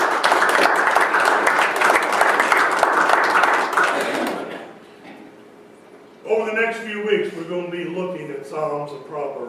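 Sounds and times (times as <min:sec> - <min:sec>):
audience applause: 0:00.0 - 0:04.6
speech: 0:07.5 - 0:09.4.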